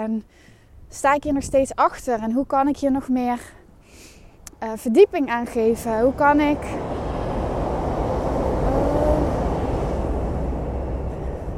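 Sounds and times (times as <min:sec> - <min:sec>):
speech: 0:00.0 - 0:06.8
passing train rumbling with a faint tonal whine: 0:04.8 - 0:11.5.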